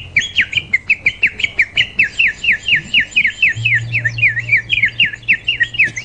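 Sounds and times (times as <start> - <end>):
faint low hum: 0.6 - 6.0
water-filled bird whistle toy warbling: 1.2 - 6.0.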